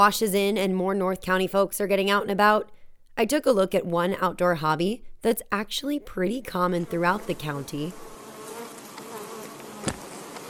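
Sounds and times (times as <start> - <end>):
speech: 0.0 - 8.1
honey bees buzzing around a backyard beehive: 6.5 - 10.4.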